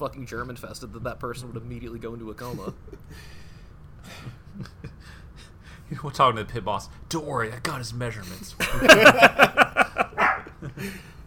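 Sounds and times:
speech: 0:00.0 - 0:03.4, 0:05.9 - 0:09.9
laughter: 0:04.0 - 0:05.5, 0:08.6 - 0:11.0
dog barking: 0:10.1 - 0:10.5.

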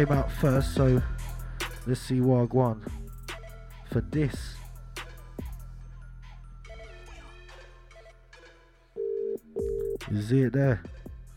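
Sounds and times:
speech: 0:00.0 - 0:03.0, 0:03.9 - 0:04.6, 0:10.1 - 0:11.0
electronic tones of a phone call being placed: 0:09.0 - 0:10.0.

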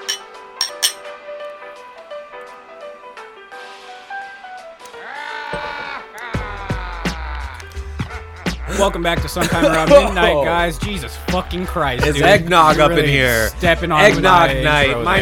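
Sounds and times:
glasses clinking in a toast: 0:00.0 - 0:01.1
laughter: 0:06.2 - 0:10.7, 0:11.9 - 0:13.2
speech: 0:08.8 - 0:15.2.

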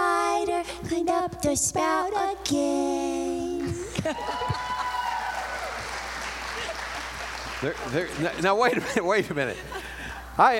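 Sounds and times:
speech: 0:00.8 - 0:04.7, 0:07.6 - 0:09.8, 0:10.4 - 0:10.5
laughter: 0:03.8 - 0:05.2, 0:06.4 - 0:10.4
audience applauding: 0:04.2 - 0:09.2.

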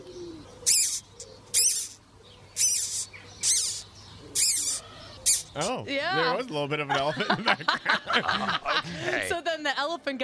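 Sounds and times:
owl calling: 0:00.0 - 0:05.8
speech: 0:05.6 - 0:10.2
laughter: 0:06.8 - 0:09.4.

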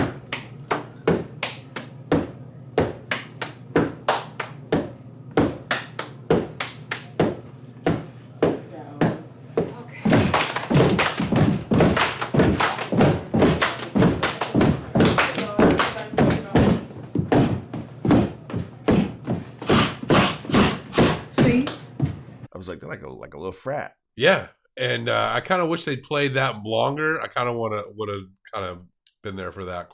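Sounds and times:
rhythmic heavy stomps: 0:00.0 - 0:22.4
speech: 0:22.9 - 0:29.9.

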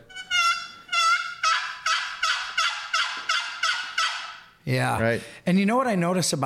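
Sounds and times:
wooden box call worked with its paddle imitating turkey yelps: 0:00.0 - 0:04.6
speech: 0:04.7 - 0:06.4.

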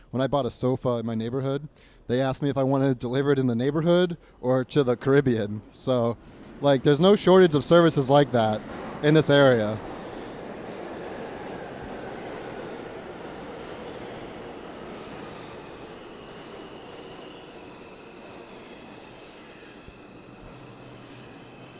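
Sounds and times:
speech: 0:00.1 - 0:10.0
subway train wheels rumbling on track: 0:04.2 - 0:21.7
faint high subway wheel squeals: 0:06.0 - 0:21.7.

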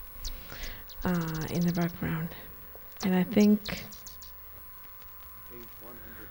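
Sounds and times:
blue jay calling: 0:00.0 - 0:06.2
speech: 0:01.0 - 0:04.0.

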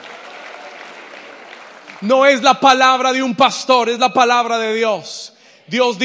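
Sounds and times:
audience applauding with many hands clapping: 0:00.0 - 0:02.4
speech: 0:02.0 - 0:06.0.

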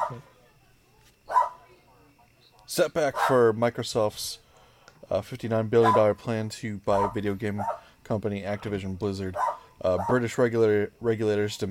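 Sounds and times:
dog barking: 0:00.0 - 0:00.2, 0:01.3 - 0:01.6, 0:03.1 - 0:03.4, 0:05.8 - 0:06.1, 0:07.0 - 0:07.9, 0:09.4 - 0:10.2
speech: 0:00.1 - 0:00.3, 0:02.8 - 0:04.4, 0:05.0 - 0:11.6.

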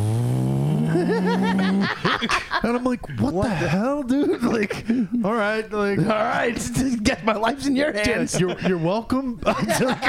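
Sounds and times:
voice imitating car engine accelerating: 0:00.0 - 0:02.0
laughter: 0:00.9 - 0:10.0
speech: 0:01.0 - 0:10.0.

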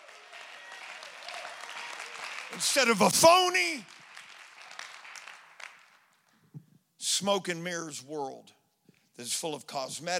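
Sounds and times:
crowd of people clapping their hands: 0:00.0 - 0:06.4
speech: 0:02.5 - 0:04.0, 0:07.2 - 0:08.6, 0:09.2 - 0:10.1.

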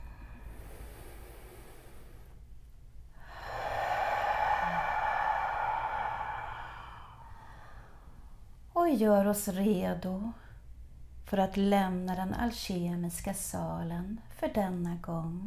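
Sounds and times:
deep breath taken during a guided meditation: 0:00.0 - 0:02.5, 0:03.1 - 0:08.5
speech: 0:08.9 - 0:10.4, 0:11.3 - 0:15.4.

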